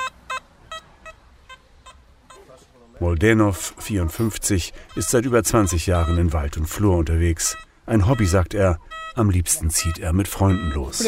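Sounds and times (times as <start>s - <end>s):
hobby metal detector beeping: 0.0s - 2.6s, 4.9s - 11.0s
low hiss: 0.0s - 11.0s
speech: 3.0s - 11.0s.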